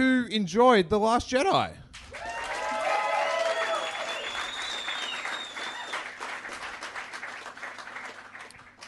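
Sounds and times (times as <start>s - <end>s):
speech: 0.0s - 1.8s
crowd applauding: 2.0s - 8.8s
people cheering: 2.1s - 6.3s
people whistling: 3.7s - 6.0s.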